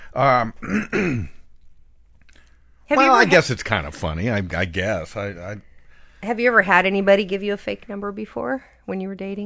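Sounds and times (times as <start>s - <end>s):
speech: 0.1s - 1.4s, 2.9s - 9.4s
person clearing throat from a cold: 0.6s - 1.4s.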